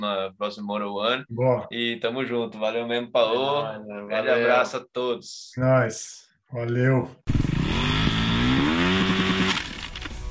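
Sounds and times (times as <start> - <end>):
speech: 0.0 - 8.0
motorcycle engine revving: 7.3 - 9.9.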